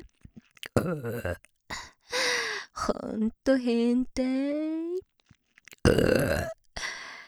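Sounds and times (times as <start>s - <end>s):
woman's small mouth clicks: 0.0s - 1.5s, 5.6s - 6.6s
loud rough deliberate burp from a woman: 0.7s - 1.4s, 5.8s - 6.6s
speech: 0.8s - 1.8s, 2.9s - 4.8s, 5.9s - 6.6s.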